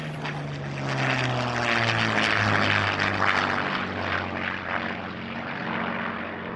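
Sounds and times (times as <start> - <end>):
piston-engined propeller plane droning: 0.0 - 6.5.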